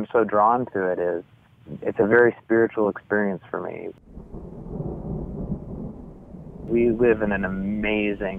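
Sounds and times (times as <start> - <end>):
speech: 0.0 - 4.5, 6.7 - 8.3
faint hiss of rain: 0.0 - 8.3
thunder rumbling from a thunderstorm over a cornfield in the countryside: 4.0 - 8.3.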